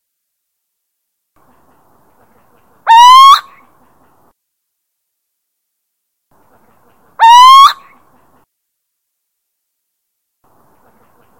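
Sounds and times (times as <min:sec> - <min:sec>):
little owl territorial call in Drenthe, Netherlands: 0:02.9 - 0:03.5, 0:07.2 - 0:07.9.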